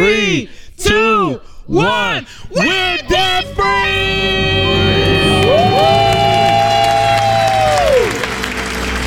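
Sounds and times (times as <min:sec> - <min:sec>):
speech: 0:00.0 - 0:04.8
family screaming and cheering in celebration: 0:02.8 - 0:09.0
long sustained shriek: 0:03.6 - 0:08.3
crowd clapping: 0:04.6 - 0:09.0.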